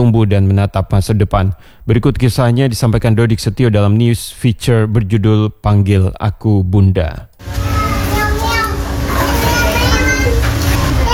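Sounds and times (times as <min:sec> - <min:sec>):
speech: 0:00.0 - 0:07.7
toddlers shouting, chattering and laughing outdoors in a yard: 0:07.5 - 0:11.1.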